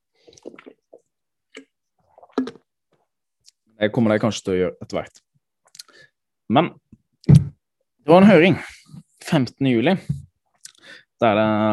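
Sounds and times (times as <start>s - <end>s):
person drinking water with wet swallows and a gulp: 0.1s - 2.7s
speech: 3.8s - 5.3s, 6.5s - 6.8s, 8.1s - 10.2s, 11.2s - 11.7s.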